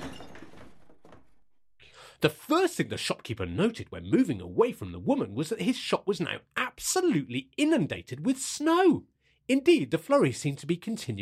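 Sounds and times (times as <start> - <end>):
glass snow globe shattering on a hard floor: 0.0 - 1.2
speech: 2.2 - 11.2.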